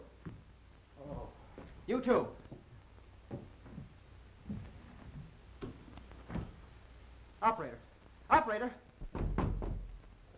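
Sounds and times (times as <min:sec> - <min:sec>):
speech: 0:01.9 - 0:02.4, 0:08.5 - 0:08.8
knocking on a door: 0:09.0 - 0:09.9.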